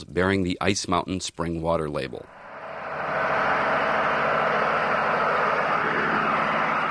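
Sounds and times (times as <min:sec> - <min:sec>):
speech: 0:00.0 - 0:02.4
high-powered diesel pump drawing water from an aquifer during a test run: 0:02.3 - 0:06.8.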